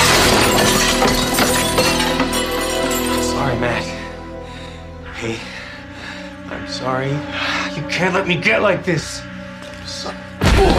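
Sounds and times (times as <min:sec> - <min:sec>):
glass coffee table shattering: 0:00.0 - 0:03.4
glass shards clattering and tinkling: 0:00.0 - 0:03.6
speech: 0:06.8 - 0:07.4, 0:08.0 - 0:09.3.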